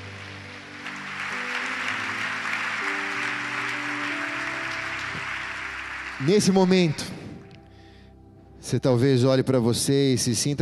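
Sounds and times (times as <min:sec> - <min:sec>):
large crowd applauding: 0:00.0 - 0:07.5
soft sustained keyboard chords: 0:00.0 - 0:10.6
speech: 0:06.2 - 0:07.2, 0:08.7 - 0:10.6.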